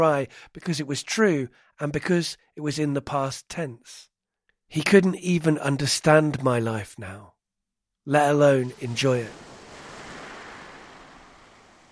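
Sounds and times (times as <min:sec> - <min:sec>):
speech: 0:00.0 - 0:04.1, 0:04.7 - 0:07.3, 0:08.0 - 0:09.5
ocean waves breaking on shore: 0:08.2 - 0:11.9.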